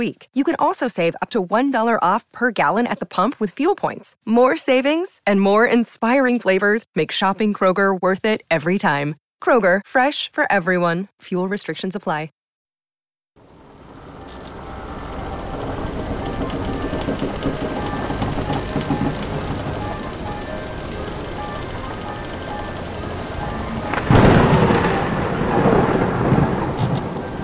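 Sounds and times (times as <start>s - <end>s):
speech: 0.0s - 12.4s
heavy rain in a summer storm in the Gulf of Haraki: 13.4s - 27.4s
loud thunderclap rumbling: 13.9s - 27.4s.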